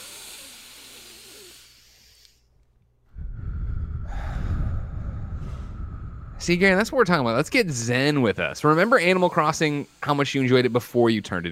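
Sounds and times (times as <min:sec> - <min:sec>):
deep breaths taken together as a calming exercise: 0:00.0 - 0:08.0
speech: 0:06.4 - 0:11.5.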